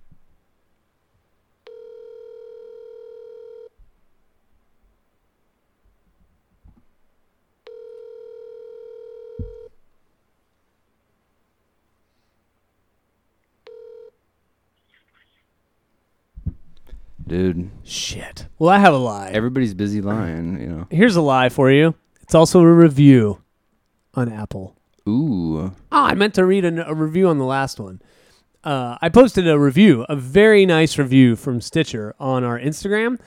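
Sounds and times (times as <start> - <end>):
faint noise: 0.0 - 33.2
outgoing phone ringback tone over a speakerphone: 1.6 - 3.8, 7.6 - 9.8, 13.6 - 14.2
speech: 17.3 - 23.4, 24.2 - 33.2.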